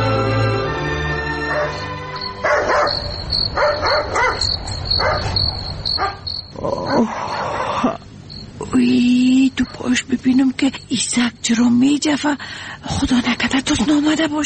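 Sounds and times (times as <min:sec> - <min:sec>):
hum: 0:00.0 - 0:14.4
dog barking at night: 0:01.5 - 0:06.3
speech: 0:07.0 - 0:08.0, 0:08.7 - 0:14.4.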